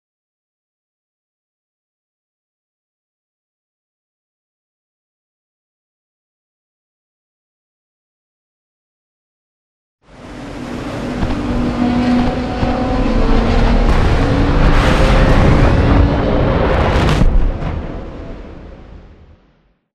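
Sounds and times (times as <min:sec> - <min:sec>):
dropship exterior: 0:10.1 - 0:19.6.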